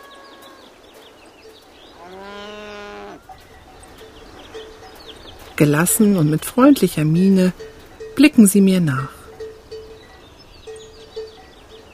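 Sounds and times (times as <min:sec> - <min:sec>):
steady outdoor background: 0:00.0 - 0:11.9
cow in a herd of alpine cattle mooing on a hillside pasture: 0:01.9 - 0:03.4
speech: 0:05.6 - 0:09.2.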